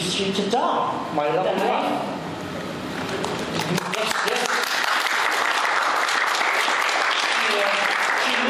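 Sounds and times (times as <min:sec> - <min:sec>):
speech: 0:00.2 - 0:02.1
audience applause: 0:03.1 - 0:08.4.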